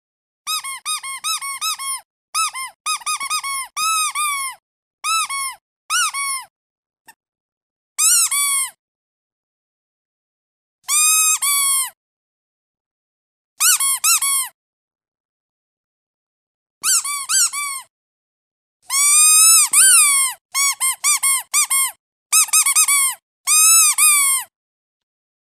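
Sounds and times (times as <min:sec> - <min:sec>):
squeaky dog toy: 0:00.4 - 0:06.5, 0:08.0 - 0:08.8, 0:10.9 - 0:12.0, 0:13.6 - 0:14.6, 0:16.8 - 0:17.9, 0:18.8 - 0:24.5.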